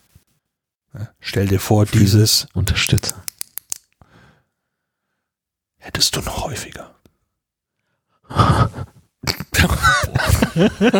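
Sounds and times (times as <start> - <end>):
speech: 1.0 - 3.3, 6.0 - 7.0, 9.6 - 10.9
crisp clicks: 2.6 - 4.0
laughter: 9.7 - 10.9.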